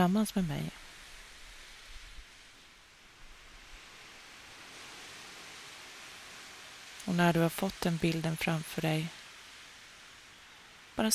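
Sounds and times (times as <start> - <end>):
speech: 0.0 - 0.8, 7.1 - 9.2
ocean surf on a beach: 0.0 - 11.1.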